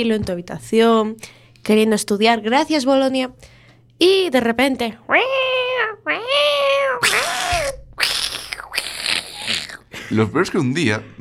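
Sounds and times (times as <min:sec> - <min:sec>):
speech: 0:00.0 - 0:06.5, 0:10.1 - 0:11.1
cats yowling and meowing in a fight: 0:05.1 - 0:09.6.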